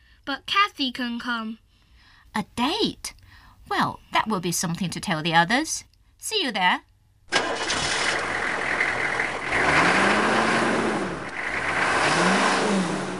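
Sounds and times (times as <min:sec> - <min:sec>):
speech: 0:00.3 - 0:01.6, 0:02.3 - 0:07.7
bus engine sputtering and revving in rough surges: 0:07.4 - 0:13.1.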